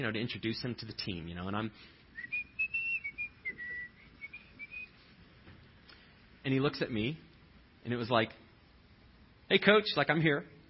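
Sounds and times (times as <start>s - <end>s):
speech: 0.0s - 2.4s, 6.4s - 8.4s, 9.5s - 10.6s
person whistling a short lilting tune: 2.2s - 5.0s.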